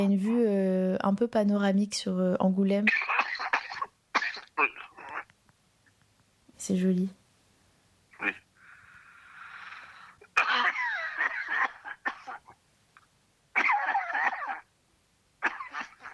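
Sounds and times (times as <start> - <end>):
speech: 0.0 - 3.5, 6.6 - 7.2, 8.2 - 8.4
heavy coughing: 2.9 - 5.3, 10.2 - 12.6, 13.6 - 14.7, 15.4 - 16.1
wheezing breath: 8.6 - 10.3.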